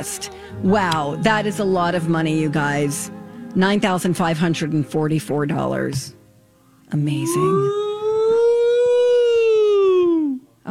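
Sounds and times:
speech: 0.0 - 6.2, 6.9 - 7.8
vocal whoop turning into siren imitation: 7.2 - 10.4.

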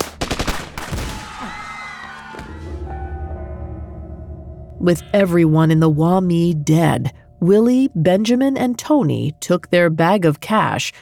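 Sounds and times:
gunshots: 0.0 - 1.4
lingering low rumble and ringing tones: 2.6 - 10.9
speech: 4.8 - 10.9.

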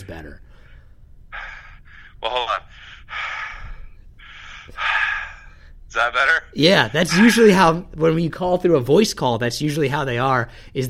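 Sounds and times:
speech: 0.0 - 0.5, 2.2 - 3.2, 6.0 - 10.8
heavy breathing into a microphone during a voice call: 0.4 - 5.8, 10.5 - 10.8.

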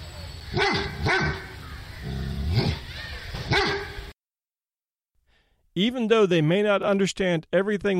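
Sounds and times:
speech: 0.5 - 1.4, 5.8 - 7.9
dog barking: 0.5 - 1.5, 3.5 - 4.0.

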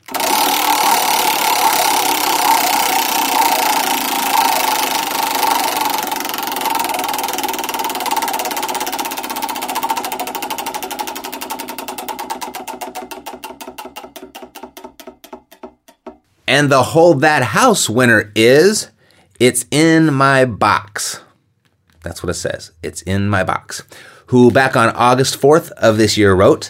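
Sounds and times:
prize wheel spinning and clicking, spun to pick a contest winner: 0.0 - 16.2
speech: 16.5 - 21.2, 22.0 - 26.6.

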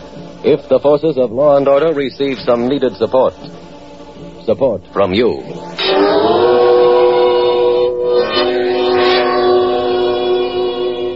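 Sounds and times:
speech: 0.4 - 3.6, 4.4 - 6.4
train horn blaring in a railroad station in a large eastern city: 5.6 - 11.1.

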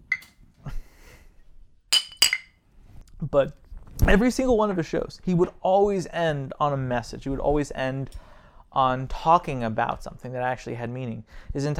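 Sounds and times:
glasses clinking together in a toast: 0.0 - 0.4, 1.9 - 2.6
speech: 3.3 - 11.7.

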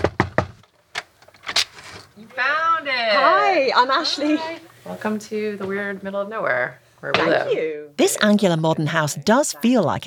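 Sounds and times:
hard knocking on a wooden door: 0.0 - 0.6
speech: 2.4 - 10.0.

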